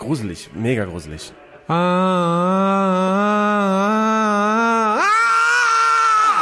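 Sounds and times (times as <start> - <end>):
speech: 0.1 - 3.9
man screaming: 1.7 - 6.4.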